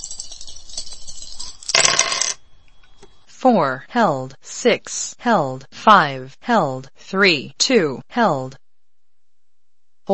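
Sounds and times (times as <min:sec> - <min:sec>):
dice rolling in a video dice game: 0:00.0 - 0:02.4
speech: 0:03.4 - 0:08.6.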